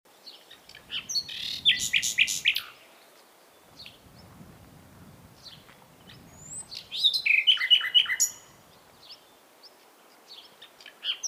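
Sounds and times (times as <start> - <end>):
common nightingale Luscinia megarhynchos singing: 0.3 - 11.2.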